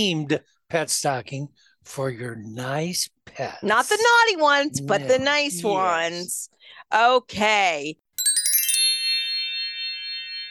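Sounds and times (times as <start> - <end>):
speech: 0.0 - 8.0
bright flurry of tinkling holiday chimes: 8.2 - 10.4
sustained bell tones: 8.2 - 10.4.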